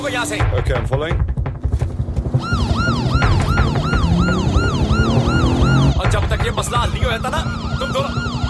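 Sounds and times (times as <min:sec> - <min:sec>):
heavy rumbling engine: 0:00.0 - 0:08.4
speech: 0:00.1 - 0:01.3, 0:06.0 - 0:08.3
road noise: 0:01.5 - 0:08.4
police car siren wailing in rapid sweeps: 0:02.4 - 0:08.4.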